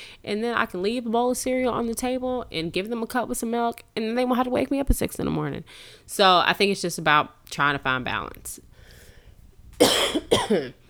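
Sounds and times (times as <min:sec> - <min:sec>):
speech: 0:00.2 - 0:08.7, 0:09.8 - 0:10.8
person coughing forcefully: 0:09.8 - 0:10.8.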